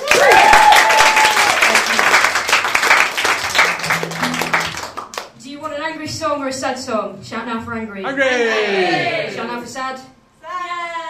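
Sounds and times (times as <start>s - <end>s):
loud dense crowd applause: 0.0s - 5.3s
speech: 6.5s - 10.1s.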